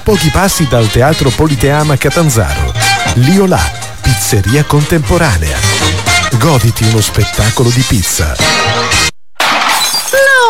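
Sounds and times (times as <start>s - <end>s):
speech: 0.1s - 9.1s
smartphone screen shattering: 9.4s - 10.2s.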